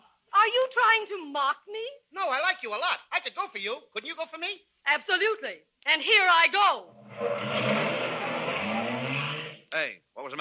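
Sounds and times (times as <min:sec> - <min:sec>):
speech: 0:01.0 - 0:07.8, 0:09.7 - 0:10.4
car engine running as a car drives in: 0:06.9 - 0:09.7.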